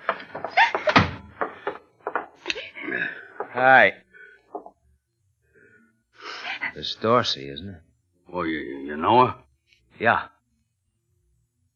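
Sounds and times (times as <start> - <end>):
door opening and shutting with scraping and rattling handling: 0.0 - 2.7
door creaking as it swings: 0.0 - 3.8
speech: 3.6 - 4.0, 6.8 - 9.4, 10.0 - 10.4.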